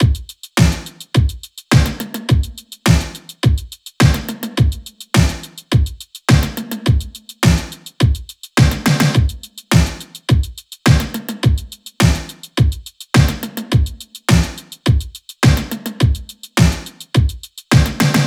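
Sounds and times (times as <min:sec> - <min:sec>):
full drum loop: 0:00.0 - 0:18.2.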